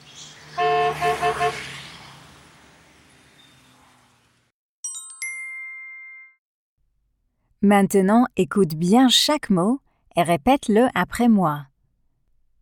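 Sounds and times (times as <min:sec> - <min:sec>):
rumble of passing cars, buses, a motorcycle and a lorry: 0:00.0 - 0:04.5
quick car horn honks: 0:00.6 - 0:01.8
speech: 0:07.6 - 0:11.7.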